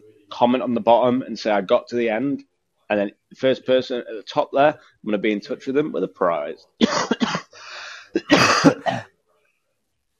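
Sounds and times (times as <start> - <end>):
speech: 0.4 - 7.2
person coughing in a rough fit: 6.8 - 9.0
breathy hissing intake between coughs: 7.5 - 8.2.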